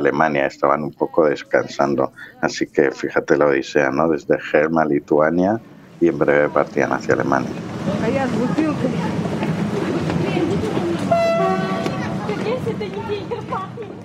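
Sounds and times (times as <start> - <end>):
speech: 0.0 - 9.1
murmuring voices on a busy platform: 0.0 - 14.0
rumble of rail noise: 3.7 - 14.0
arriving train horn blast: 11.0 - 12.4.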